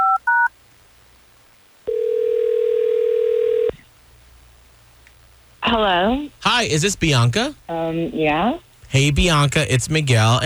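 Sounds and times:
steady telephone ring tone: 1.9s - 3.7s
speech: 5.7s - 10.4s.

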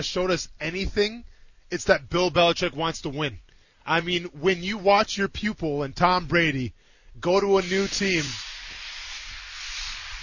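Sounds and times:
speech: 0.0s - 8.4s
smoke machine hissing: 7.3s - 10.2s.

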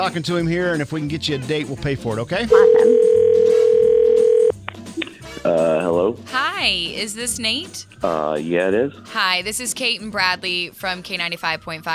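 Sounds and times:
speech: 0.0s - 3.2s, 5.4s - 11.9s
telephone dial tone while placing a call: 2.6s - 4.5s.

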